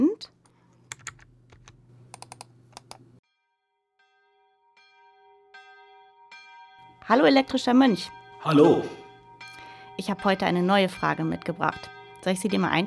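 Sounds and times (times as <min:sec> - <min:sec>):
typing on a PC computer keyboard at a terminal: 0:00.8 - 0:03.0
speech: 0:07.1 - 0:09.0, 0:10.0 - 0:12.8.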